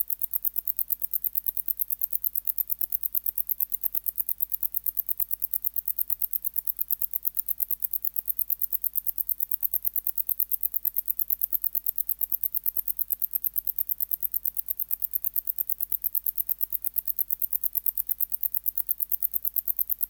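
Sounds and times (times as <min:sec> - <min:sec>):
wart-biter bush-cricket Decticus verrucivorus ticking: 0:00.0 - 0:20.0.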